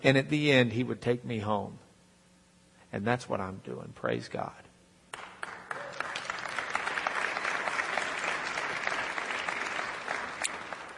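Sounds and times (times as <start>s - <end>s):
speech: 0.0s - 1.8s, 2.9s - 4.6s
audience applause: 5.2s - 10.9s.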